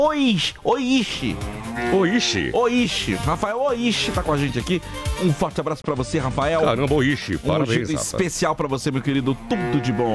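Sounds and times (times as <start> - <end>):
speech: 0.0 - 10.1
person imitating a cow mooing: 1.3 - 2.5.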